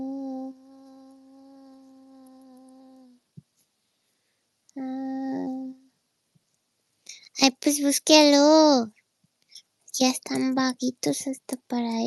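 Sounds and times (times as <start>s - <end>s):
fly buzzing: 0.4s - 3.2s
speech: 7.4s - 9.0s, 10.0s - 12.0s.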